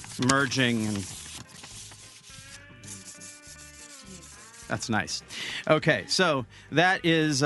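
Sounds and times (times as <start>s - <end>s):
two paper slips with written questions rubbed together: 0.0s - 2.3s
speech: 0.2s - 1.2s, 4.7s - 7.4s.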